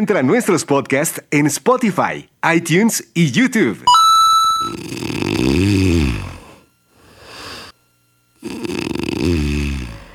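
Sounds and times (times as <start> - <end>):
speech: 0.0 - 4.0, 4.6 - 6.3, 8.4 - 9.6
person snoring loudly: 4.6 - 7.8, 8.4 - 10.1.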